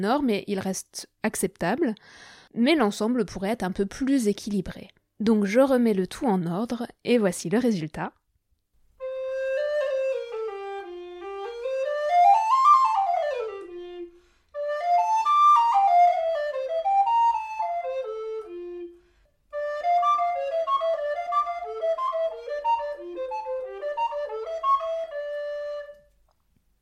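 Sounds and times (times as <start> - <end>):
speech: 0.0 - 8.2
flute playing after adjusting headjoint cork: 9.0 - 26.2.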